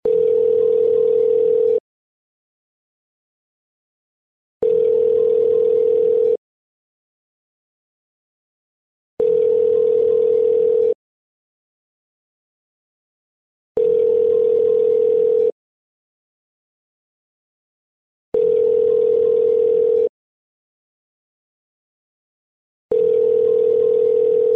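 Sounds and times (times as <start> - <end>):
internal phone ringing: 0.0 - 1.8, 4.6 - 6.4, 9.2 - 11.0, 13.8 - 15.6, 18.4 - 20.1, 22.9 - 24.5.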